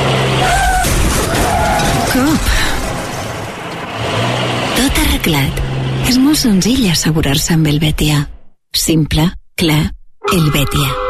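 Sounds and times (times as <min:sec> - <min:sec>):
car crash: 0:00.0 - 0:04.9
tires skidding: 0:00.0 - 0:05.0
car engine and road noise roar: 0:00.0 - 0:08.5
speech: 0:05.2 - 0:11.0.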